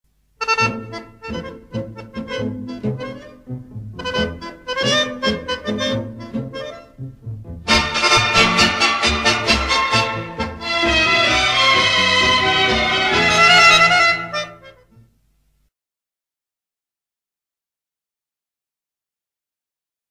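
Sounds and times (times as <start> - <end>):
accordion playing tango: 0.4 - 15.0.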